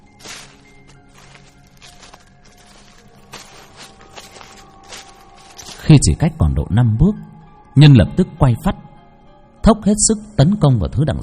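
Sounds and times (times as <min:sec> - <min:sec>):
footsteps crunching through dry leaves: 0:00.0 - 0:06.2
speech: 0:05.9 - 0:08.8, 0:09.6 - 0:11.2.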